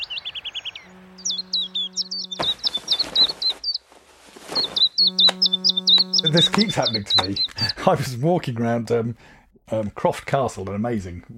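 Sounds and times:
old and young swifts screaming around a town on a summer evening: 0.0 - 3.8, 4.5 - 7.8
steady low hum: 0.8 - 3.5, 5.0 - 7.7
speech: 6.2 - 11.3.

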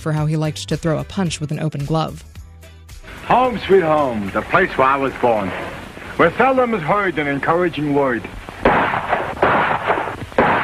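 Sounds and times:
speech: 0.0 - 2.3, 3.3 - 9.1
gunshots: 7.5 - 10.6.

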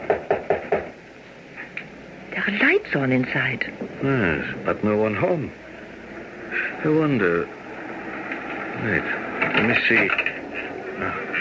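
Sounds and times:
firm knocks on a wooden door: 0.0 - 1.0
speech: 2.5 - 5.6, 6.8 - 7.6, 8.8 - 10.2, 11.0 - 11.2.

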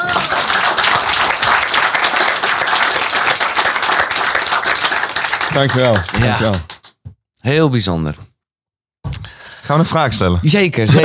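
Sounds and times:
audience applause: 0.0 - 7.0
speech: 5.6 - 6.7, 7.4 - 8.2, 9.7 - 11.0.

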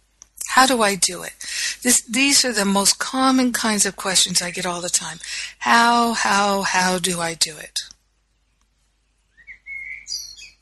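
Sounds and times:
speech: 0.6 - 7.9
birds chirping outdoors: 8.3 - 10.5.

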